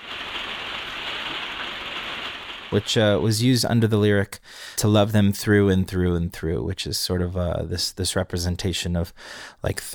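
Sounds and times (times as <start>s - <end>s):
rain falling: 0.0s - 3.3s
speech: 2.7s - 9.9s.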